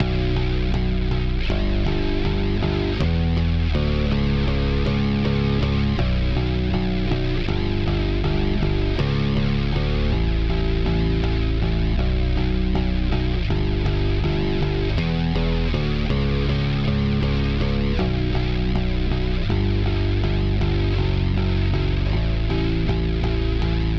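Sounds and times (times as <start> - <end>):
shoegaze music with bass: 0.0 - 23.9.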